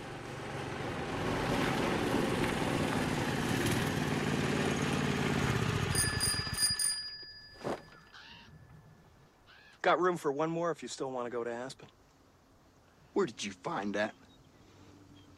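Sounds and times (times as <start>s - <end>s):
tiny wobbly motor scooter engine buzzing: 0.1s - 6.8s
high bell-like pings: 5.9s - 9.0s
speech: 9.8s - 12.0s, 13.2s - 14.2s.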